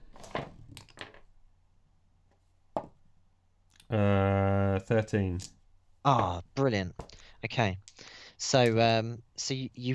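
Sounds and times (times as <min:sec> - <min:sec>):
percentile dice rolling on a tabletop: 0:00.2 - 0:01.3
speech: 0:03.9 - 0:04.2, 0:04.9 - 0:09.9.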